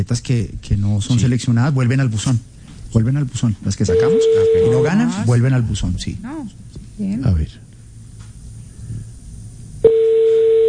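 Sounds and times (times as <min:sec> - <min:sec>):
speech: 0:00.0 - 0:07.6
low noise: 0:00.0 - 0:10.6
landline telephone tone: 0:03.9 - 0:05.0, 0:09.8 - 0:10.6.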